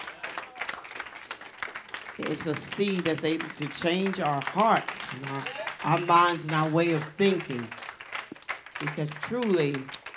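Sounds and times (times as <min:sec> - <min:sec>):
room full of people applauding a sermon: 0:00.0 - 0:10.1
speech: 0:02.2 - 0:07.8, 0:08.8 - 0:10.0.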